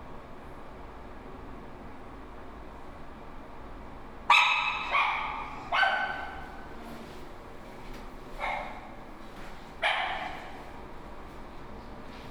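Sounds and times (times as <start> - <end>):
dogs barking: 4.3 - 6.8, 8.3 - 9.1, 9.8 - 10.8.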